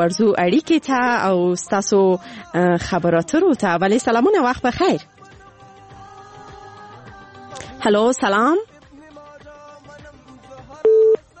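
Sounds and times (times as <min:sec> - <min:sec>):
speech: 0:00.0 - 0:05.1, 0:07.8 - 0:08.7
telephone tone after a call is disconnected: 0:10.8 - 0:11.2.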